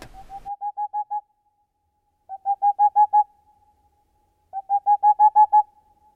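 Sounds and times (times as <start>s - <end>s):
Boreal Owl song of hollow hoots: 0.0s - 1.3s, 2.3s - 3.4s, 4.5s - 5.8s.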